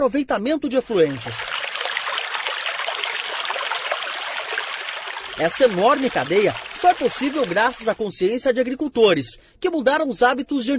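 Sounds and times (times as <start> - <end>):
speech: 0.0 - 1.6, 5.4 - 10.7
water rinsing an empty pesticide container: 0.8 - 8.0.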